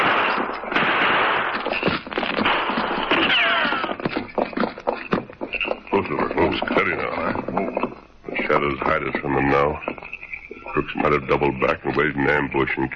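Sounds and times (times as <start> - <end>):
dense hissy noise: 0.0 - 12.9
hooves of horses being led clip-clopping: 1.5 - 12.9
horse whinnying: 3.0 - 7.8
speech: 9.0 - 9.9, 10.8 - 12.9.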